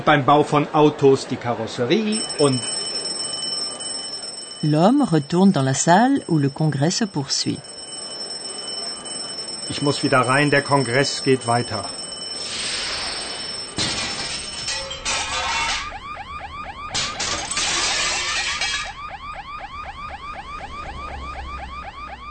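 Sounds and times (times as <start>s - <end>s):
speech: 0.0s - 2.8s, 4.6s - 7.7s, 9.7s - 12.0s
hotel electronic alarm system whooping: 2.1s - 22.2s
glass breaking outside: 12.4s - 16.0s, 16.9s - 19.0s.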